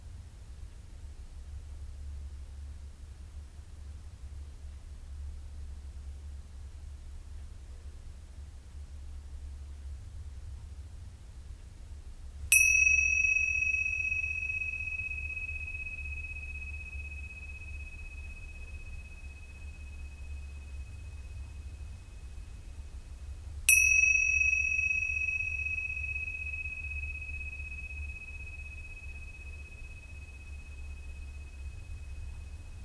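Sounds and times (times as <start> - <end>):
soft low hum: 12.5 - 32.8
meditation bells ringing: 12.6 - 21.8, 23.7 - 32.8.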